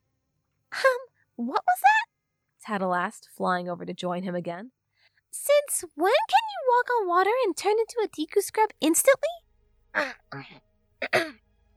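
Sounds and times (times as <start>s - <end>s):
speech: 2.7s - 9.4s, 10.0s - 11.4s
person clearing throat: 10.0s - 11.4s
person coughing: 10.0s - 11.4s.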